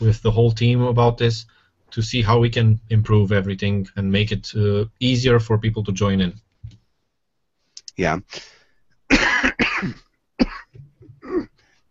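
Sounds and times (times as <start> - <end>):
speech: 0.0 - 6.4, 8.0 - 10.1
harsh coughs from a speaker with a croaky voice: 9.1 - 11.6
low throat-clearing rumbles: 9.1 - 11.6.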